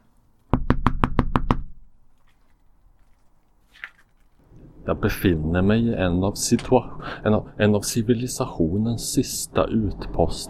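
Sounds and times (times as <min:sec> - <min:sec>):
knocking on a metal door: 0:00.6 - 0:01.7
speech: 0:04.8 - 0:10.4.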